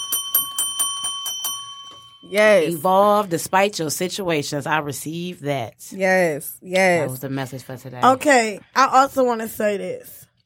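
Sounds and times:
bell ringing: 0.0 - 3.0
speech: 2.3 - 10.2.

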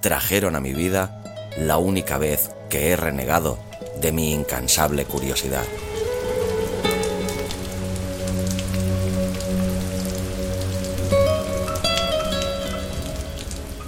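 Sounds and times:
speech: 0.0 - 5.9
rain pattering on a hard surface at night: 3.3 - 13.8.

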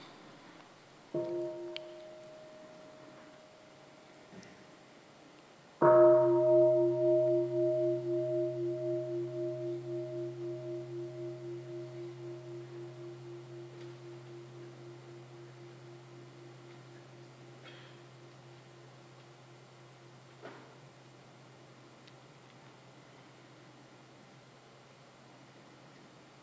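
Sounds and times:
bell struck and ringing out: 5.8 - 19.0.

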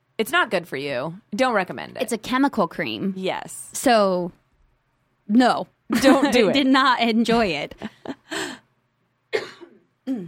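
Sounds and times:
speech: 0.2 - 4.4, 5.3 - 8.0, 10.1 - 10.2
person clearing throat and coughing with something stuck in their throat: 9.3 - 10.2.

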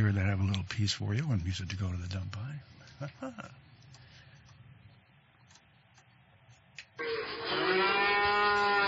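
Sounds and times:
speech: 0.0 - 3.7
cattle mooing in a barnyard at Christmastime: 7.0 - 8.8.

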